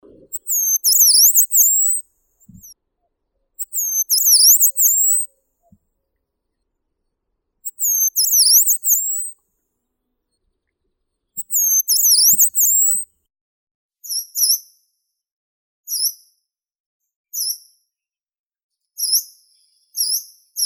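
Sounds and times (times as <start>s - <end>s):
yellow-browed warbler Phylloscopus inornatus calling: 0.1s - 2.7s, 3.6s - 5.8s, 7.6s - 9.3s, 11.4s - 13.0s.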